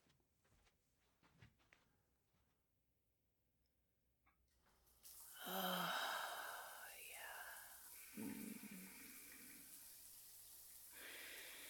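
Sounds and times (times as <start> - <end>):
shower water running: 4.6 - 11.6.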